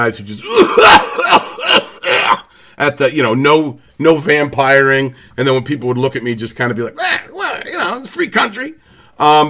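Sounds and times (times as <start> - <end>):
speech: 0.0 - 9.4
man coughing harshly: 0.4 - 2.5.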